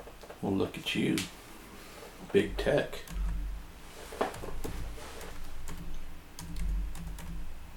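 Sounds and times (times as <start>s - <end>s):
low hum: 0.0s - 7.7s
speech: 0.4s - 1.4s, 2.2s - 3.2s
person typing on a computer keyboard while setting up an email account: 2.6s - 3.6s, 4.3s - 7.7s.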